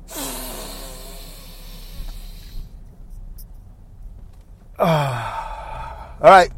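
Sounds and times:
loud sighing exhale with some voice in it: 0.0s - 2.7s, 4.8s - 6.2s
deep breath drawn in: 0.0s - 2.8s, 4.8s - 6.2s.

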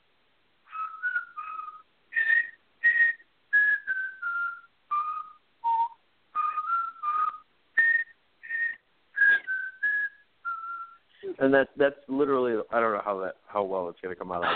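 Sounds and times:
person whistling a short lilting tune: 0.7s - 11.1s
speech: 11.4s - 14.5s.

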